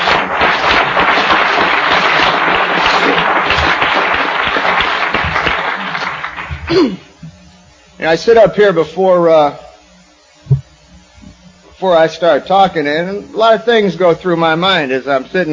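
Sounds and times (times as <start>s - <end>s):
audience applauding: 0.0s - 6.9s
speech: 6.7s - 7.0s, 8.0s - 9.6s, 11.8s - 15.5s.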